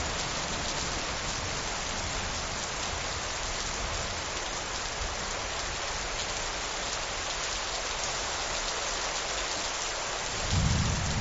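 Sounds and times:
heavy rain pouring: 0.0 - 11.1.

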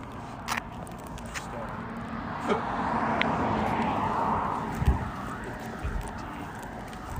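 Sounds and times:
car passing by: 1.3 - 7.1.

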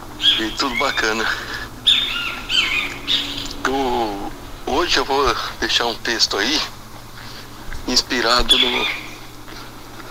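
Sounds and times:
steady chatter of other birds: 0.0 - 10.0
bright whistled phrases possibly of a great kiskadee: 0.2 - 3.6, 8.5 - 9.2
speech: 0.4 - 2.1, 3.6 - 6.8, 7.9 - 9.0.

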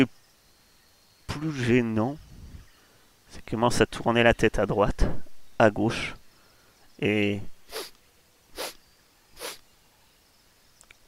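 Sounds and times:
speech: 1.3 - 2.2, 3.3 - 6.2, 7.0 - 7.8
dinosaur sniffing through its nostrils: 7.7 - 8.8, 9.4 - 9.6.

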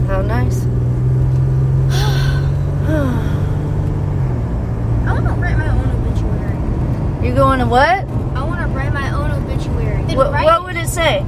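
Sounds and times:
car engine rumble in a car cabin while driving: 0.0 - 11.2
breathy vocal sounds like a gasp or sigh: 1.9 - 3.9
speech: 7.6 - 8.1.

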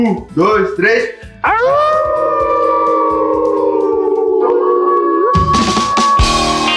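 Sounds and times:
speech: 0.0 - 2.0
noisy excited voices: 1.4 - 6.7
several people howling together like wolves: 1.5 - 6.7.

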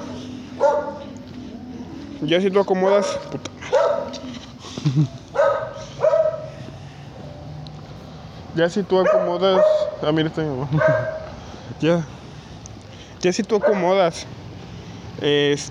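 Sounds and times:
dogs barking: 0.0 - 1.4, 2.7 - 4.4, 5.2 - 6.8, 8.9 - 11.4, 13.5 - 14.1
speech: 2.2 - 5.2, 8.6 - 12.2, 13.2 - 14.4, 15.2 - 15.6
laughter: 4.6 - 5.4, 10.5 - 11.3.

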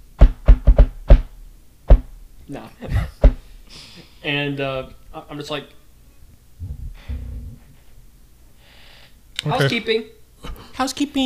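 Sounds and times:
firm knocks on a door: 0.2 - 1.3
speech: 2.5 - 5.8, 9.4 - 11.2.

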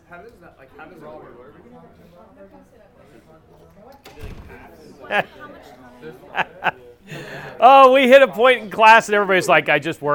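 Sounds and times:
speech: 0.1 - 10.1
door pulled shut: 4.0 - 4.7
voices chattering: 4.7 - 9.8
laughter: 5.0 - 5.5, 6.1 - 7.6.

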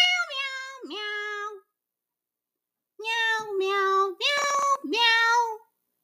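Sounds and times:
human voice imitating a cat meowing: 0.0 - 1.6, 3.0 - 5.6.

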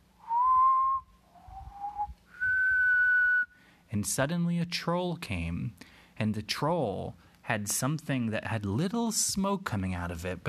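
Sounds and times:
person whistling: 0.2 - 3.6
speech: 4.0 - 10.4.

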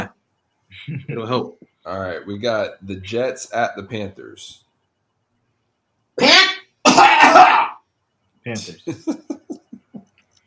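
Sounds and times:
speech: 0.8 - 4.6, 8.4 - 9.5
throat clearing and coughing: 6.8 - 7.8
laughter: 8.8 - 10.1.

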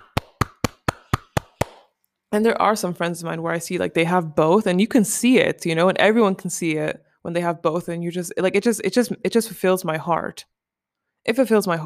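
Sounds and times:
one person clapping hands: 0.0 - 2.0
speech: 2.3 - 10.6, 11.2 - 11.8.

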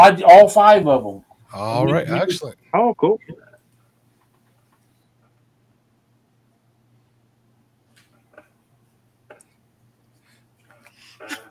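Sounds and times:
speech: 0.0 - 3.5
soft breathy noises: 9.5 - 11.4
sneeze: 11.0 - 11.4.

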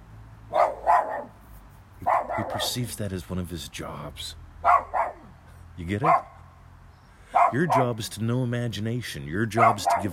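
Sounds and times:
dog barking: 0.5 - 1.3, 2.0 - 2.8, 4.6 - 5.3, 6.0 - 6.4, 7.3 - 8.0, 9.6 - 10.1
speech: 2.0 - 4.4, 5.8 - 6.3, 7.5 - 10.1.

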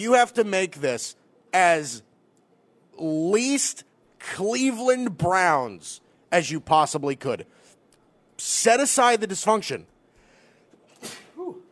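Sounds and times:
speech: 0.0 - 2.1, 3.0 - 7.6, 8.4 - 9.9
sneeze: 10.9 - 11.6.

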